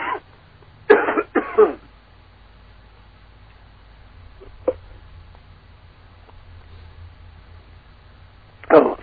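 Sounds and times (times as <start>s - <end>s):
person coughing in short harsh bursts: 0.0s - 0.3s, 0.9s - 1.9s
quiet room hum: 0.0s - 9.0s.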